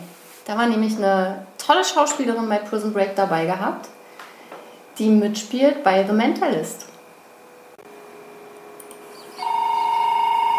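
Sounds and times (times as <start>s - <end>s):
speech: 0.5s - 4.0s, 5.0s - 6.9s
telephone ringing with a high electronic tone: 9.4s - 10.5s.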